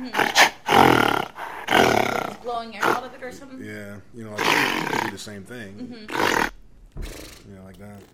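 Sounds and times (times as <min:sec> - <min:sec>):
male mountain gorilla deep roaring calls: 0:00.0 - 0:03.1, 0:04.4 - 0:05.2, 0:06.1 - 0:07.4
speech: 0:02.6 - 0:06.5, 0:07.1 - 0:08.1.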